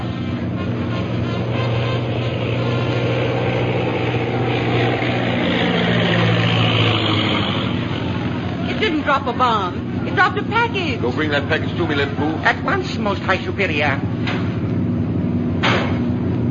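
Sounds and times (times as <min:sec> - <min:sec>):
low-flying airplane engine drone passing overhead: 0:00.0 - 0:16.5
speech: 0:09.3 - 0:14.4.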